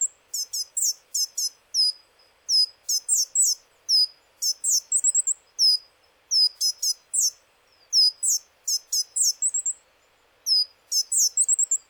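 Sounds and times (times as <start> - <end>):
coal tit calling high-pitched chips and trilled phrases in Okayama, Japan: 0.0 - 9.8, 10.5 - 11.8.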